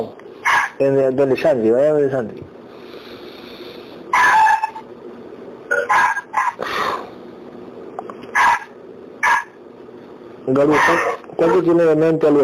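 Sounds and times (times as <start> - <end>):
dog barking loudly: 0.4 - 0.8, 4.2 - 4.7, 5.9 - 6.6, 8.3 - 9.6, 10.7 - 11.2
speech: 0.8 - 2.6, 10.5 - 12.4.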